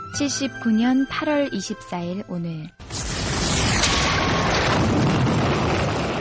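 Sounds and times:
speech: 0:00.2 - 0:02.8
hissing noise of volcanic eruption: 0:02.8 - 0:04.8
volcanic eruption of Mount Vesuvius on the Bay of Naples: 0:02.8 - 0:06.1.

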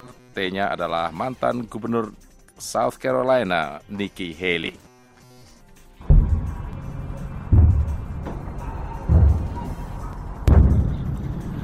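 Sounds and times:
speech: 0:00.4 - 0:04.9
heavy explosions in the Gaza Strip at nightfall: 0:06.0 - 0:09.8, 0:10.4 - 0:11.2
constant low roar: 0:06.0 - 0:11.6.

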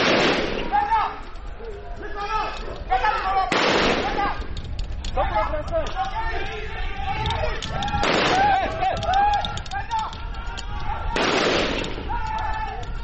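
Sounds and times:
gunfire from army soldiers shooting live bullets: 0:00.0 - 0:00.7, 0:03.5 - 0:04.4, 0:08.0 - 0:08.6, 0:11.2 - 0:12.1
people shouting and chanting: 0:00.5 - 0:13.0.

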